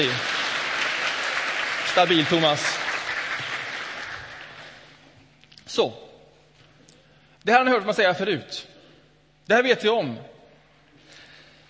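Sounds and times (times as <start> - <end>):
speech: 0.0 - 0.3, 2.0 - 2.7, 5.7 - 6.0, 7.4 - 8.7, 9.5 - 10.3
audience applause thanking performers: 0.0 - 5.0.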